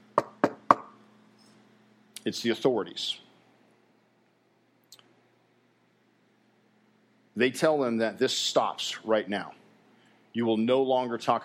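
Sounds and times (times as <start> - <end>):
firm knocks on a wooden door: 0.2 - 0.9
speech: 2.2 - 3.2, 7.4 - 9.6, 10.4 - 11.4.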